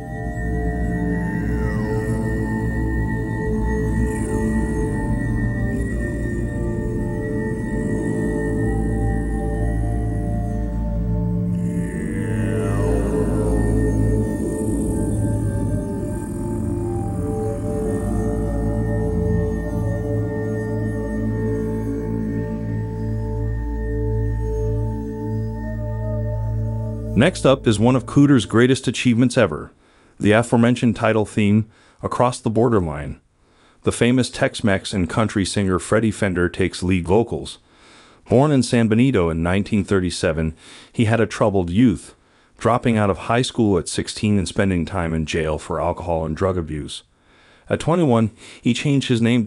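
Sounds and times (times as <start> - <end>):
low monk-like moaning chant vocals with heavy added reverb: 0.0 - 23.0, 25.6 - 28.6
steady dense hum: 0.0 - 28.9
speech: 27.2 - 33.2, 33.8 - 47.1, 47.7 - 49.4.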